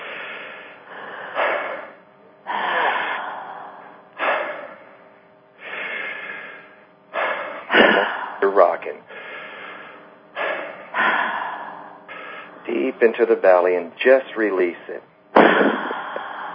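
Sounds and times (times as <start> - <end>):
deep connected breathing with long airy inhales and sharp exhales: 0.0 - 16.5
speech: 13.0 - 15.8.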